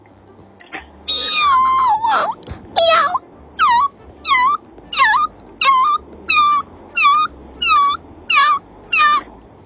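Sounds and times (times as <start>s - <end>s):
voice mimicking a squeaky bicycle: 1.1s - 9.4s.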